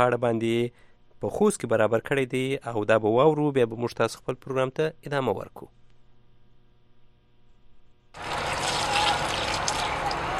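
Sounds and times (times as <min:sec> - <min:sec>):
speech: 0:00.0 - 0:05.8
water gushing from a solar-powered pump drawing from a thirty-metre hand-dug well in Khost: 0:08.2 - 0:10.3.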